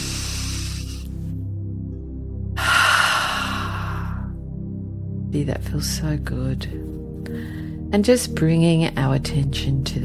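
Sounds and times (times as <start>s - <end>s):
slow deep breath drawn in through the nose: 0.0s - 1.3s, 2.6s - 4.3s
steady low musical drone: 0.0s - 10.0s
speech: 5.4s - 10.0s.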